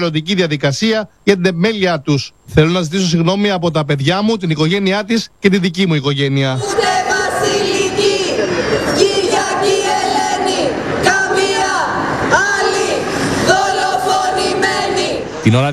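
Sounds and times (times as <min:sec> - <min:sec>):
speech: 0:00.0 - 0:07.5, 0:15.5 - 0:15.7
raised shouts: 0:06.6 - 0:15.2
large outdoor crowd outside a courthouse murmuring and calling out: 0:06.6 - 0:15.7.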